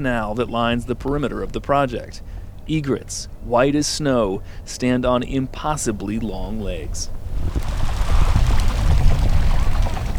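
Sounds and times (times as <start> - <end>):
speech: 0.0 - 7.7
large flock of birds splashing as they lift off water: 7.4 - 10.1.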